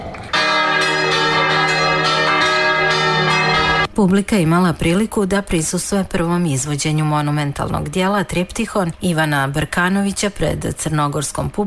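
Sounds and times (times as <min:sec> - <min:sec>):
church bells ringing for the opening of an arts festival in Kotor: 0:00.3 - 0:03.9
speech: 0:04.0 - 0:11.6.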